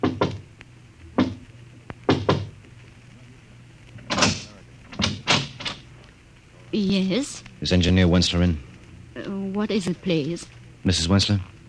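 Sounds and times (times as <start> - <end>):
man knocking softly on a door: 0.0 - 0.4, 1.2 - 1.4, 2.1 - 2.6
low steady hum: 0.0 - 11.6
speech: 6.7 - 11.5.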